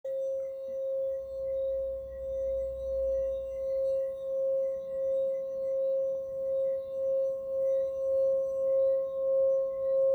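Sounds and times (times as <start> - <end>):
meditation singing bowl in C: 0.1 - 10.1.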